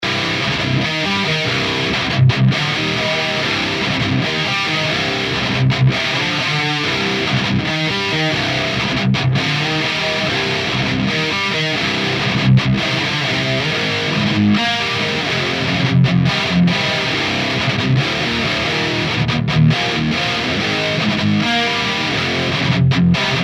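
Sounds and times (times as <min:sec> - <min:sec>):
high gain electric guitar on bridge pickup: 0:00.0 - 0:23.4.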